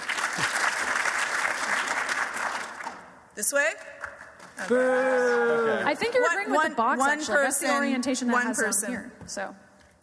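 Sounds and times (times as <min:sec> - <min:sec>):
room full of people applauding: 0:00.0 - 0:03.1
speech: 0:03.4 - 0:03.9, 0:04.6 - 0:09.6.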